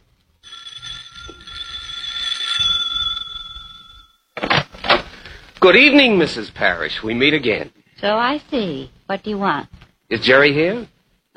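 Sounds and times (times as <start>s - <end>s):
house doorbell ringing in a long electric peal: 0.4s - 4.3s
speech: 5.6s - 11.3s.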